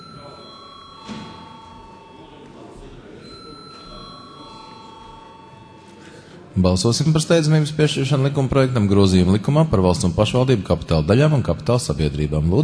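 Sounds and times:
parliament voting electronic bell ringing: 0:00.0 - 0:10.4
low murmur of people chatting in a large room: 0:00.0 - 0:12.6
people shuffling: 0:01.1 - 0:04.1, 0:05.1 - 0:06.6
speech: 0:06.6 - 0:12.6.

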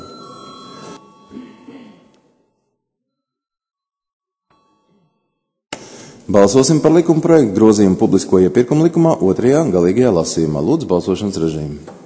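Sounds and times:
bell rung in a parliament chamber to call a vote: 0:00.0 - 0:01.7
speech: 0:06.3 - 0:12.0.

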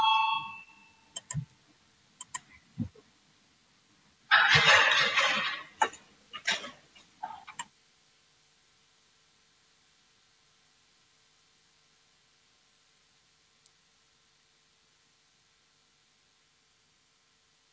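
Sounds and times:
brief tone: 0:00.0 - 0:01.1
harsh electric parliamentary voting bell ringing: 0:00.0 - 0:01.1
clicks and thumps: 0:02.2 - 0:03.0, 0:04.3 - 0:07.7.

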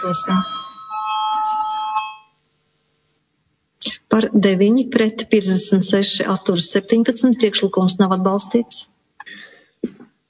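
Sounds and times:
speech: 0:00.0 - 0:00.6, 0:04.1 - 0:09.5
bell ringing in a parliament chamber before a vote: 0:00.0 - 0:02.4.

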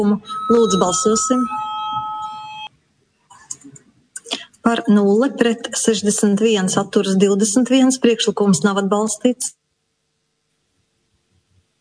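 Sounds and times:
speech: 0:00.0 - 0:01.7, 0:04.7 - 0:09.6
parliament voting bell electronic tone: 0:00.0 - 0:02.7.

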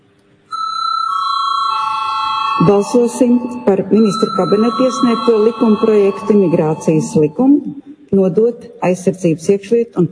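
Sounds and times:
electronic bell signal calling a vote in a parliamentary chamber: 0:00.5 - 0:07.5
speech: 0:02.6 - 0:10.1.

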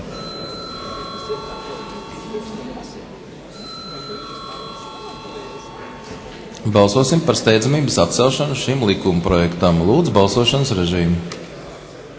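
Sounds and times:
electric bell ringing in a parliament chamber before a vote: 0:00.0 - 0:08.7
faint murmur: 0:00.0 - 0:12.1
speech: 0:06.6 - 0:11.4.

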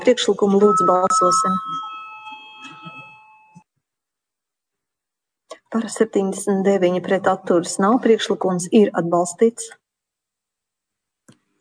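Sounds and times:
speech: 0:00.0 - 0:01.9, 0:05.7 - 0:09.8
electric bell rung in a parliamentary chamber to call a vote: 0:00.3 - 0:03.6.

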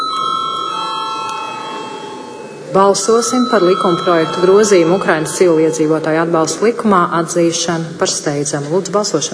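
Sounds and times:
parliament voting bell ringing in a parliament chamber before a vote: 0:00.0 - 0:07.3
speech: 0:02.7 - 0:09.3.

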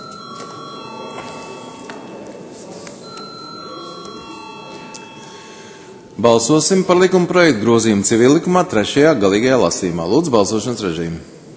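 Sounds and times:
electric bell ringing in a parliament chamber before a vote: 0:00.0 - 0:06.2
people moving in a parliament chamber: 0:00.0 - 0:07.2
low murmur of voices in a parliament chamber: 0:00.0 - 0:11.5
speech: 0:06.2 - 0:11.4.

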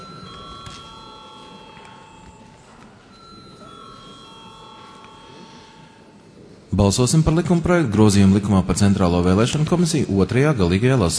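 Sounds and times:
parliament chamber electric bell ringing before a vote: 0:00.0 - 0:06.3
low murmur: 0:00.0 - 0:11.1
speech: 0:06.8 - 0:11.1.

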